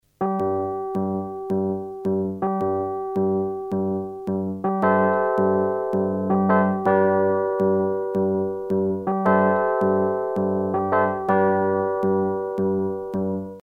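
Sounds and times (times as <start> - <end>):
Rhodes electric piano: 0.1 - 13.6.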